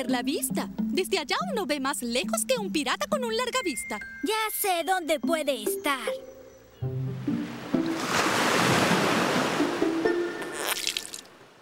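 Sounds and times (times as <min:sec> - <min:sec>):
speech: 0:00.0 - 0:07.0
faint musical tone: 0:00.0 - 0:08.2
ocean waves crashing and washing ashore: 0:06.9 - 0:11.6.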